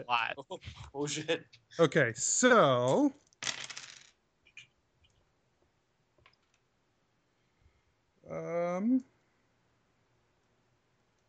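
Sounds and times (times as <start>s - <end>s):
speech: 0.0s - 3.7s, 8.3s - 9.1s
dice tumbling across a hard table: 2.9s - 4.6s, 6.2s - 6.6s.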